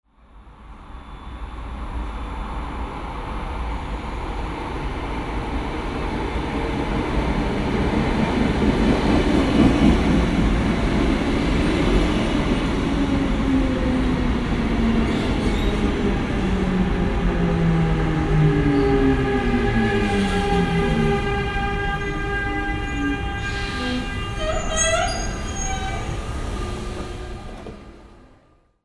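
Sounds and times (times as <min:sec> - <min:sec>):
train arriving at station: 0:00.8 - 0:28.2.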